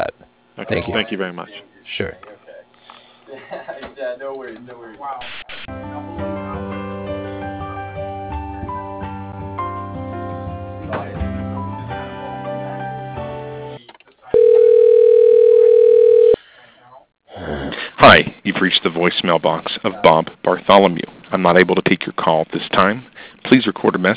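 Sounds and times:
speech: 0.7 - 2.3, 4.2 - 5.5, 18.0 - 24.1
steady single-pitch telephone line tone during call transfer to voicemail: 14.4 - 16.4.

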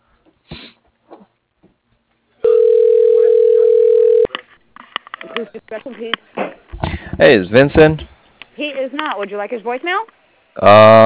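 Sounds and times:
telephone dial tone while placing a call: 2.5 - 4.3
speech: 5.5 - 6.6, 7.2 - 8.1, 8.8 - 11.0.

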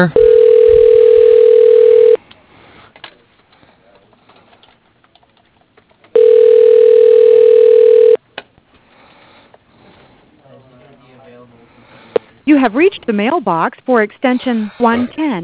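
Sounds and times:
speech: 0.0 - 0.2, 12.6 - 15.4
telephone ringback tone before reaching voicemail: 0.2 - 2.2, 6.2 - 8.2.

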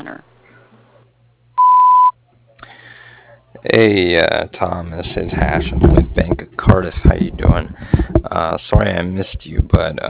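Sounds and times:
speech: 0.0 - 0.4, 3.6 - 10.0
voicemail message tone beep: 1.6 - 2.1.

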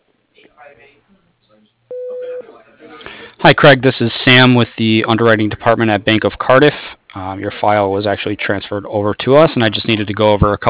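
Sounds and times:
speech: 0.6 - 10.6
voicemail beep after a recorded spoken greeting: 1.9 - 2.5.

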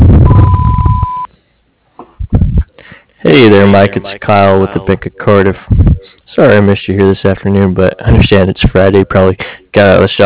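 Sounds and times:
answering machine beep: 0.2 - 1.3
speech: 3.3 - 10.2.

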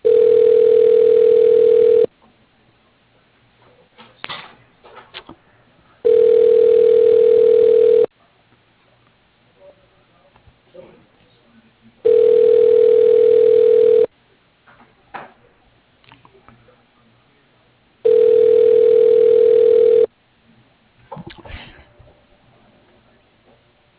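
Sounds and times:
telephone ringback tone while a call is being transferred: 0.0 - 2.1, 6.0 - 8.1, 12.0 - 14.1, 18.0 - 20.1.

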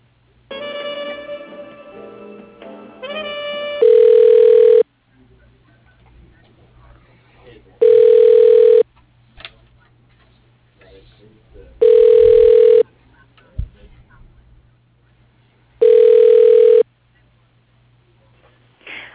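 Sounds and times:
telephone ringback tone while an automated phone directory tries a sales extension: 3.8 - 4.8, 7.8 - 8.8, 11.8 - 12.8, 15.8 - 16.8.

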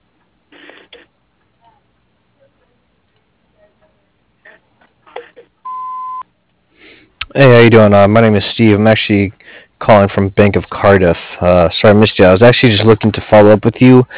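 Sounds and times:
voicemail recording beep: 5.6 - 6.3
speech: 7.4 - 14.1.

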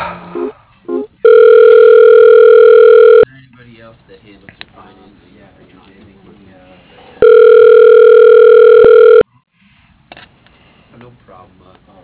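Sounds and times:
telephone line tone while transferring call to voicemail: 1.2 - 3.3, 7.2 - 9.3.

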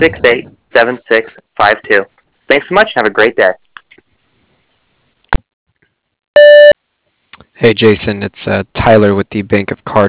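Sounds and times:
speech: 0.0 - 3.6, 7.5 - 10.0
voicemail answering-system beep: 6.4 - 6.8.

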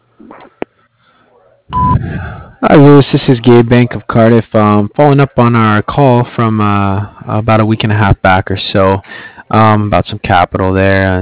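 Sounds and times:
speech: 0.2 - 0.6, 1.7 - 11.2
answering machine beep: 1.7 - 2.0.

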